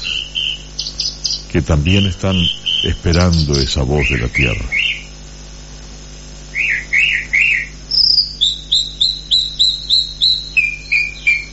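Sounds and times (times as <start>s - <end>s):
low drone: 0.0s - 5.1s
chalk-browed mockingbird singing: 0.0s - 5.2s, 6.5s - 11.5s
faint insect hum: 0.0s - 11.5s
speech: 1.5s - 4.8s.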